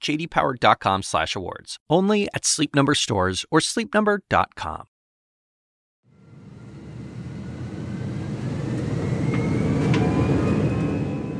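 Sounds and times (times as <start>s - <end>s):
speech: 0.0s - 4.9s
jet airplane taking off: 6.1s - 11.3s.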